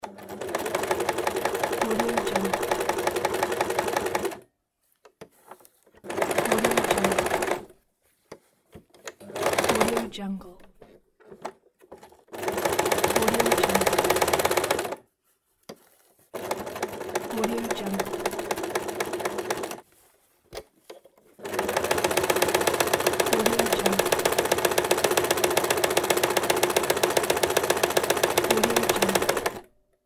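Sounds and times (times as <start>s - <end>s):
sewing machine: 0.0s - 4.4s, 6.0s - 7.7s, 9.0s - 10.1s, 11.2s - 15.0s, 16.4s - 19.8s, 21.4s - 29.8s.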